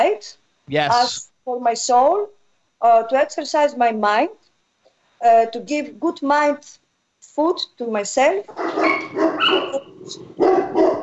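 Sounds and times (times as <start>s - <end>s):
speech: 0.0s - 4.4s, 5.2s - 6.8s, 7.4s - 10.6s
dog barking: 8.5s - 11.0s.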